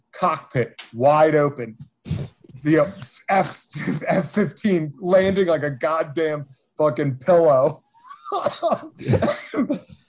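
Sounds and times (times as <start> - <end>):
speech: 0.2 - 1.9, 2.6 - 10.0
laughter: 2.6 - 4.4, 8.0 - 10.0
person coughing with harsh dry hacking bursts: 8.1 - 10.0.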